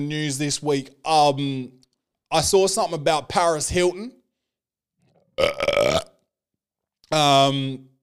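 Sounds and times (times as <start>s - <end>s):
speech: 0.0s - 4.2s, 5.4s - 6.0s, 7.1s - 7.9s
loud burps: 5.2s - 6.3s.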